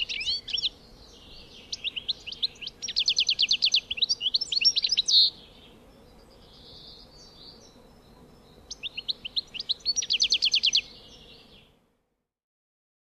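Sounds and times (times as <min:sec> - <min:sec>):
European goldfinch song of tinkling notes and liquid trill: 0:00.0 - 0:11.7.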